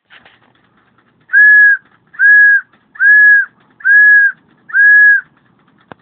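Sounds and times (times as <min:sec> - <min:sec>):
dog whistle: 0:01.3 - 0:05.2.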